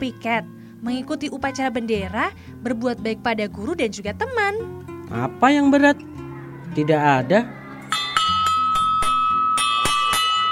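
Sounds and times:
speech: 0:00.0 - 0:06.2, 0:06.8 - 0:07.6
school bell ringing: 0:07.9 - 0:10.5.

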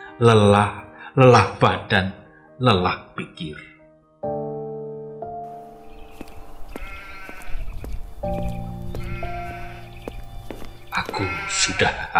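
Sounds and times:
speech: 0:00.2 - 0:04.5, 0:08.2 - 0:08.7, 0:11.0 - 0:12.1
rustling noisy farmyard background: 0:05.6 - 0:12.1
goat bleating: 0:06.8 - 0:07.6, 0:08.9 - 0:10.0, 0:11.0 - 0:12.1.

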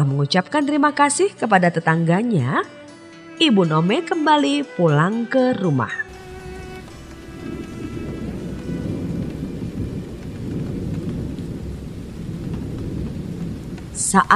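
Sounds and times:
speech: 0:00.0 - 0:02.8, 0:03.4 - 0:06.0, 0:14.1 - 0:14.3
heavy rain: 0:06.1 - 0:14.3.

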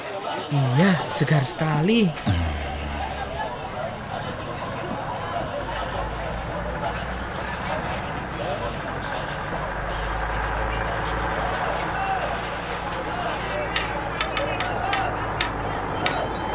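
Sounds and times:
speech: 0:00.5 - 0:02.5
vegetable transport trucks rumbling past: 0:02.1 - 0:16.5
deep low drone: 0:02.3 - 0:07.0.

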